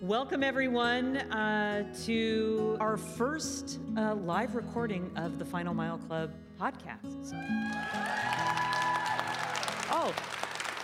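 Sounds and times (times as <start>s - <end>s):
speech: 0.0s - 8.7s, 9.9s - 10.4s
live audience clapping: 7.5s - 10.8s.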